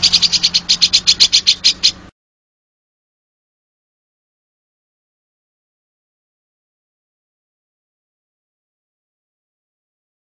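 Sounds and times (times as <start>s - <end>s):
oriental magpie-robin rattling call: 0.0s - 2.1s.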